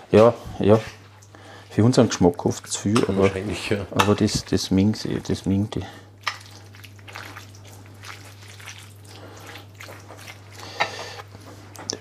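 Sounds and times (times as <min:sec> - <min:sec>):
speech: 0:00.1 - 0:01.0, 0:01.8 - 0:06.0
water poured and splashed into a cooking mixture: 0:06.2 - 0:10.7.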